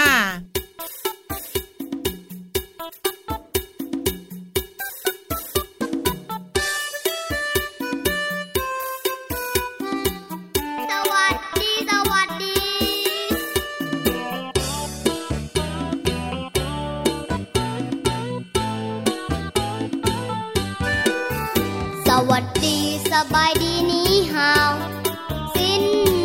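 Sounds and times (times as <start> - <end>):
upbeat song with crisp rhythmic beat and bright tinkling melodic tones: 0.0 - 26.2.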